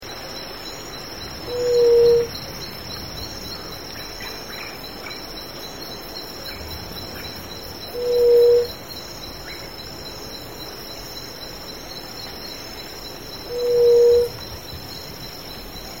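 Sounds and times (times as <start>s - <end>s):
Gray-fronted Dove Leptotila rufaxilla calling: 1.4s - 2.4s, 7.9s - 8.8s, 13.5s - 14.6s.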